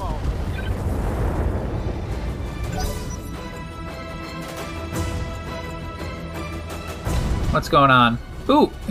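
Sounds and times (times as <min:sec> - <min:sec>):
video game mech weapons firing and explosion: 0:00.0 - 0:03.4
speech: 0:07.6 - 0:08.8.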